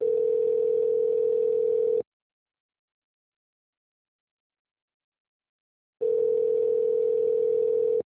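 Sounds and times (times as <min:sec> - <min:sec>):
phone ringing: 0:00.0 - 0:02.0, 0:06.0 - 0:08.0.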